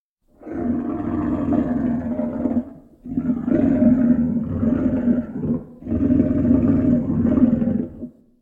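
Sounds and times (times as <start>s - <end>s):
lion roaring at close range in a jungle: 0.4s - 8.2s.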